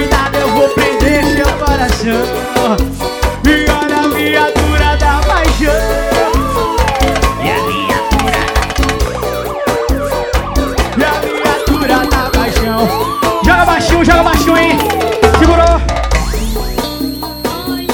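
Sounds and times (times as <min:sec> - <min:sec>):
dense music mix with a heavy thumping beat: 0:00.0 - 0:17.9
wailing siren: 0:05.3 - 0:17.9.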